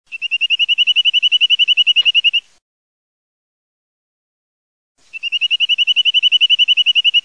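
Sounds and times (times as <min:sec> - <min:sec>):
Corsican nuthatch birdsong: 0:00.1 - 0:02.5, 0:05.1 - 0:07.2.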